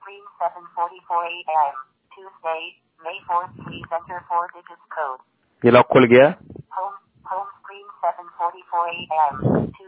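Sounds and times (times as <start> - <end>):
mobile phone screen reader synthetic voice: 0.0 - 9.8
speech: 0.1 - 9.8.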